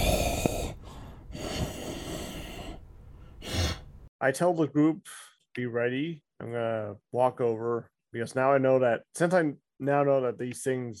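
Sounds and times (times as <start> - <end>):
voice imitating slow heavy breathing of a sleeping spiky creature: 0.0 - 3.9
speech: 4.2 - 10.9.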